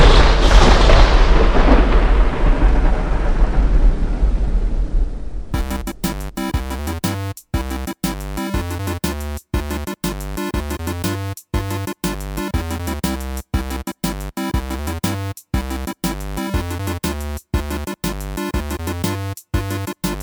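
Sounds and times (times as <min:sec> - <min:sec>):
thunder crack rolling into a long rumble: 0:00.0 - 0:05.5
rhythmic music: 0:05.6 - 0:20.2.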